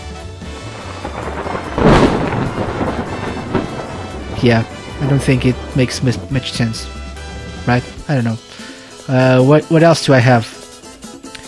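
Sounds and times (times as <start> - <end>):
rain-like hiss: 0.0 - 10.8
thunder crack sound effect: 0.1 - 8.5
speech: 4.4 - 7.0, 7.6 - 10.5.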